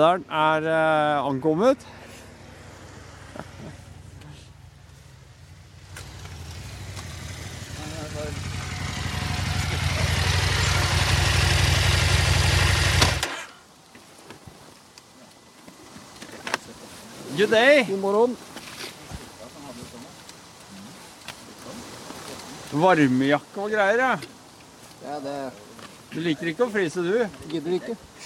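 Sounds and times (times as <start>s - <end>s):
speech: 0.0s - 2.1s, 17.4s - 18.5s, 22.7s - 24.4s, 25.0s - 28.1s
motorcycle pulling into a parking spot, engine rumbling: 1.8s - 13.7s.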